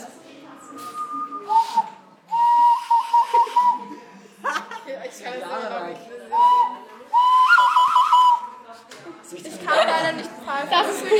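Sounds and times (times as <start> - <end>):
person whistling through pursed lips: 0.7 - 3.9, 6.4 - 8.6
laughter: 3.1 - 5.2, 9.4 - 11.1.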